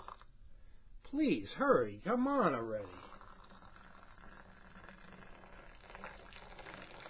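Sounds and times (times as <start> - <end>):
speech: 1.1 - 3.0
tea pouring from high up into a cup: 2.8 - 7.0.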